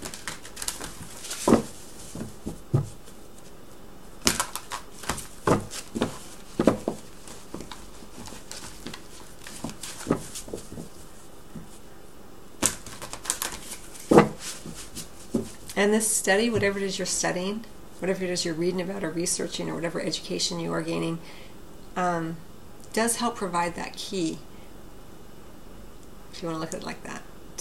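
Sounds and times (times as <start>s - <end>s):
deck of playing cards being shuffled and drawn: 0.0s - 3.5s, 4.2s - 11.7s, 12.6s - 15.7s
speech: 15.8s - 24.5s, 26.4s - 27.5s.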